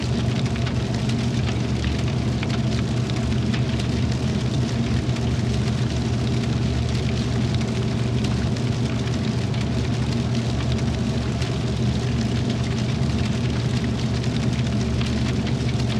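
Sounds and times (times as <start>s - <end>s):
steel furnace roaring: 0.0s - 15.9s.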